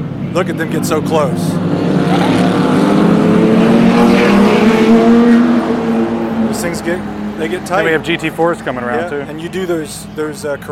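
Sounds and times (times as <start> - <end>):
pack of GT race car engines roaring at race start: 0.0 - 10.7
speech: 0.4 - 2.9, 6.6 - 10.7.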